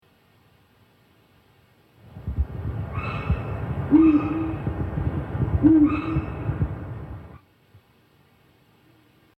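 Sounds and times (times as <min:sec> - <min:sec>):
eagle owl hooting in a forest: 0:02.8 - 0:04.8, 0:05.5 - 0:06.7.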